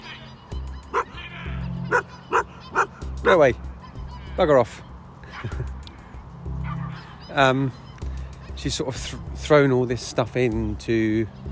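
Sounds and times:
dog barking while running toward a person: 0:00.9 - 0:01.2, 0:01.8 - 0:03.4
speech: 0:03.2 - 0:03.7, 0:04.4 - 0:05.7, 0:07.4 - 0:07.8, 0:08.6 - 0:11.5
laughter: 0:05.2 - 0:05.8.

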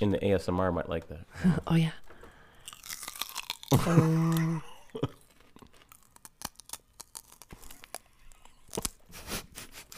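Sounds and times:
speech: 0:00.0 - 0:02.1, 0:03.7 - 0:05.2
celery being chewed: 0:02.6 - 0:09.1.

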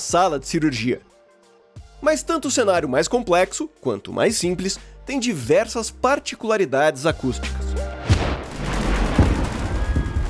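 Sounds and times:
speech: 0:00.0 - 0:01.1, 0:02.0 - 0:07.8
deep booming explosion blasts in a war scene: 0:08.0 - 0:10.2
constant low rumble: 0:08.1 - 0:10.2
gunshot cracks in a war scene: 0:08.1 - 0:10.2.

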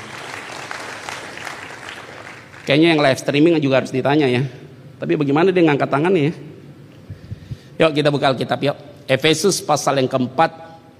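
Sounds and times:
applause from a large group: 0:00.0 - 0:02.8
speech: 0:02.6 - 0:06.5, 0:07.8 - 0:10.9.

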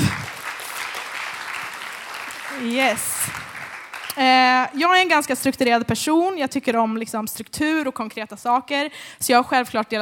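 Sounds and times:
audience applause: 0:00.0 - 0:04.3
speech: 0:02.6 - 0:03.2, 0:04.2 - 0:10.0.

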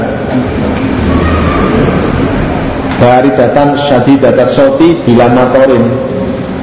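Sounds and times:
strong wind blowing: 0:00.7 - 0:03.7
speech: 0:03.0 - 0:06.1.

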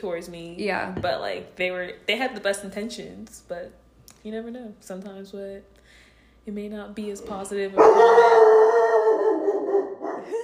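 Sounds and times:
speech: 0:00.0 - 0:08.6
dog howling: 0:07.8 - 0:10.4.

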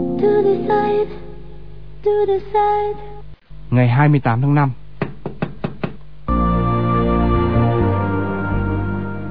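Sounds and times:
speech: 0:00.2 - 0:01.3, 0:02.0 - 0:03.1, 0:03.7 - 0:04.8
quick crisp knocks on a door: 0:05.0 - 0:06.0
loud sustained musical drone: 0:06.3 - 0:09.2.

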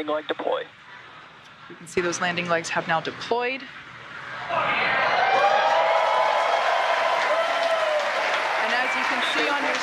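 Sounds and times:
speech: 0:00.0 - 0:00.9, 0:01.7 - 0:03.9, 0:04.5 - 0:05.0
excited shouts: 0:04.4 - 0:09.8
room of people clapping and cheering at a Falcon 9 rocket landing: 0:04.9 - 0:09.8.

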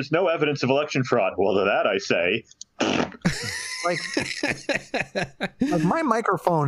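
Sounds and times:
speech: 0:00.0 - 0:06.6
loud sputtering fart: 0:02.8 - 0:03.3
laughter: 0:03.2 - 0:06.0.

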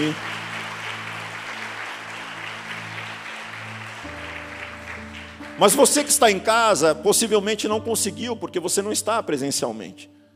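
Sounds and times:
speech: 0:00.0 - 0:00.3, 0:05.6 - 0:10.2
audience applauding: 0:00.0 - 0:06.5
sustained keyboard chords: 0:00.0 - 0:10.3.

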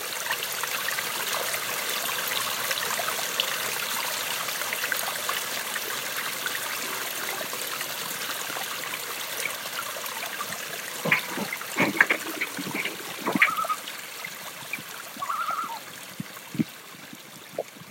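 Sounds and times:
mountain stream water rushing: 0:00.9 - 0:17.9
water splashing and gurgling: 0:05.5 - 0:17.9.

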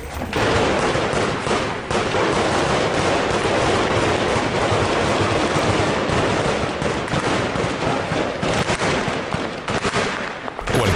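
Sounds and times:
heavy gunfire in an armed shootout: 0:00.0 - 0:10.9.

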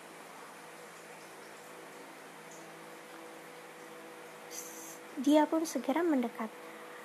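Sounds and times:
water trickling in a large river: 0:00.0 - 0:07.0
speech: 0:04.6 - 0:06.7.

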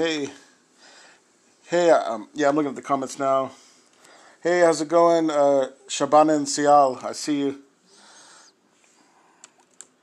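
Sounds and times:
speech: 0:00.0 - 0:00.4, 0:01.7 - 0:03.6, 0:04.4 - 0:07.6
faint computer keyboard typing: 0:09.4 - 0:10.0.

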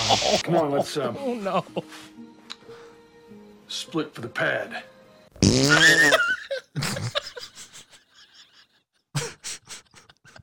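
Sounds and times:
laughter: 0:00.0 - 0:01.8, 0:05.7 - 0:10.4
speech: 0:00.1 - 0:02.3, 0:03.7 - 0:07.4
fart sound effect: 0:05.4 - 0:06.1.

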